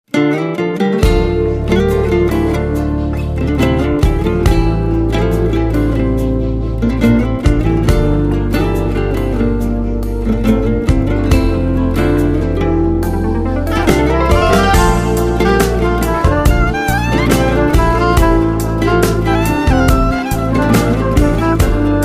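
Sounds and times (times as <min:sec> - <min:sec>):
guitar: 0:00.0 - 0:22.0
trumpet: 0:13.7 - 0:22.0.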